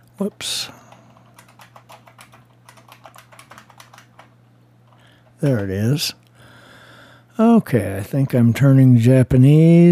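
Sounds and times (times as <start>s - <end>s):
steady low electrical hum: 0.0s - 9.9s
speech: 0.2s - 0.8s, 5.4s - 6.2s, 7.4s - 9.9s
typing on a computer keyboard: 0.9s - 4.3s.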